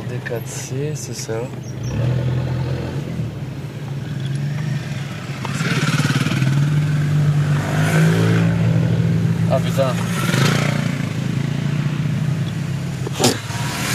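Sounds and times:
speech: 0:00.1 - 0:02.5
motorcycle roaring past a car in a rural village: 0:01.8 - 0:13.9
man muttering: 0:13.0 - 0:13.5.

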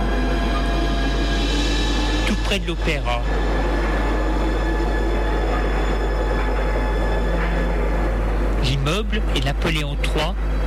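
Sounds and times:
metro train rumbling along the rails: 0:00.0 - 0:10.6
speech: 0:02.5 - 0:03.9, 0:08.8 - 0:10.6.

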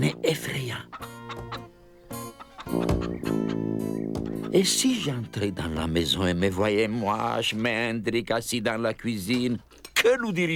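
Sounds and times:
several hens clucking in a yard: 0:00.0 - 0:05.3
speech: 0:00.2 - 0:01.4, 0:04.6 - 0:10.5.

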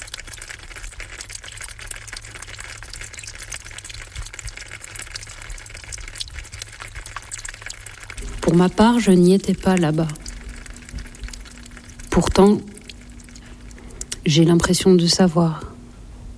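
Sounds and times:
spring water dripping onto dead leaves: 0:00.0 - 0:15.9
low rumble: 0:00.0 - 0:16.3
speech: 0:08.5 - 0:10.2, 0:12.2 - 0:12.7, 0:14.3 - 0:15.7.

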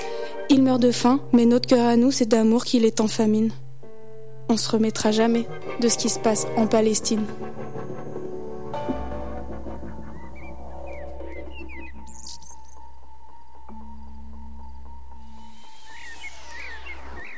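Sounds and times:
speech: 0:00.5 - 0:03.6, 0:04.5 - 0:07.6
common blackbird singing fluid warbling phrases: 0:09.9 - 0:13.0, 0:15.8 - 0:17.3.

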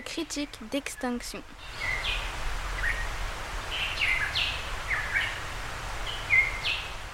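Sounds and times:
low hiss and rumble of forest ambience: 0:00.0 - 0:07.1
speech: 0:00.1 - 0:02.2
Tahiti monarch chirping calls: 0:00.4 - 0:03.1, 0:03.7 - 0:07.0.

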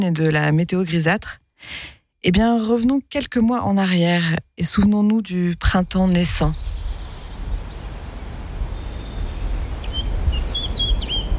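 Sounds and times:
speech: 0:00.0 - 0:06.8
birds singing with high chirps and sweeping whistles: 0:06.0 - 0:11.3.

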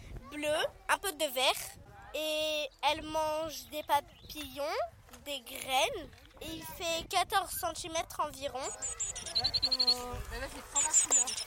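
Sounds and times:
speech: 0:00.3 - 0:11.4
European bee-eater chirping and trilling calls: 0:08.6 - 0:11.4.

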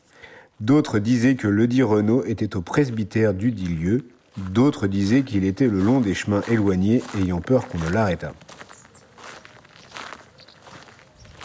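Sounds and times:
speech: 0:00.6 - 0:08.4
soft brushing footsteps walking through a cemetery: 0:02.8 - 0:11.4.

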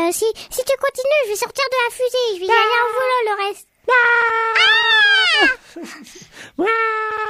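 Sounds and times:
speech: 0:00.2 - 0:04.3, 0:05.4 - 0:07.2
voice imitating frightened wailing scream: 0:04.4 - 0:05.6
person breathy gasping: 0:05.4 - 0:06.6.

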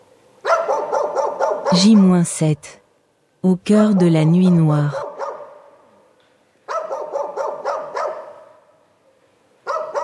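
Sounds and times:
wild dogs barking at night behind a guesthouse by a shooting range: 0:00.4 - 0:02.2, 0:05.0 - 0:05.8, 0:06.7 - 0:08.7, 0:09.6 - 0:10.0
speech: 0:01.7 - 0:02.8, 0:03.4 - 0:05.0.

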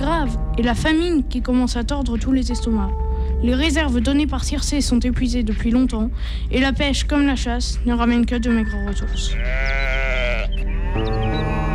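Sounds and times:
speech: 0:00.2 - 0:10.1
sheep in a livestock herd bleating on an island: 0:09.3 - 0:11.7.

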